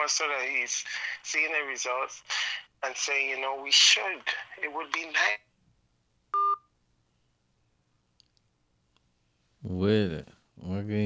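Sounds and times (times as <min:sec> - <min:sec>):
speech: 0:00.0 - 0:05.5, 0:09.6 - 0:11.0
telephone keypad tone, two-pitch beep: 0:06.4 - 0:06.7.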